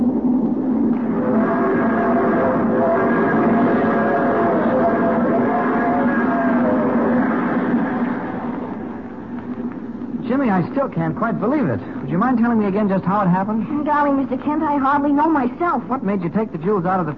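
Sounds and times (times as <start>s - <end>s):
train roaring along tracks: 0.0s - 9.5s
faint droning hum: 0.0s - 17.1s
speech: 10.6s - 17.1s.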